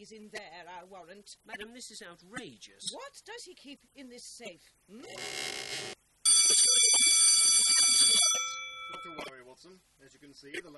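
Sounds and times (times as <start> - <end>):
speech: 0.0 - 5.9, 6.5 - 7.1, 8.4 - 10.7
homemade electric alarm bell ringing set off by a loose plank: 6.3 - 9.3.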